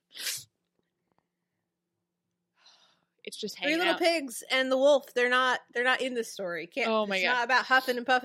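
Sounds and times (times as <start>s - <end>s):
held-back sneeze: 0.0s - 0.5s
speech: 3.3s - 8.2s.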